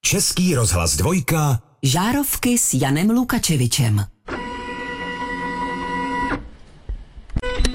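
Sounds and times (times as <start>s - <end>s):
speech: 0.1s - 4.1s
3D printer motor whine: 4.3s - 6.5s.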